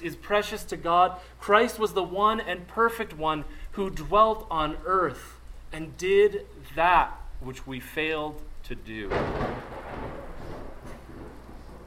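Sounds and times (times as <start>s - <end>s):
speech: 0.0s - 9.9s
thunder rumbling: 9.0s - 11.8s.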